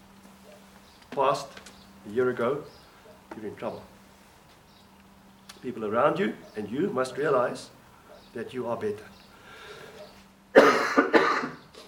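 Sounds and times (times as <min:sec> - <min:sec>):
faint hum: 0:00.0 - 0:11.8
speech: 0:01.1 - 0:03.9, 0:05.6 - 0:07.8, 0:08.4 - 0:09.1
person coughing: 0:10.5 - 0:11.8.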